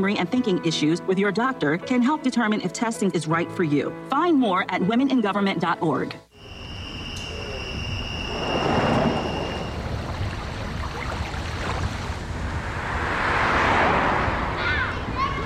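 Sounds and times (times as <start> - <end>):
speech: 0.0 - 6.3
steady rushing noise: 7.8 - 15.4
motorcycle engines revving and passing: 11.5 - 15.4.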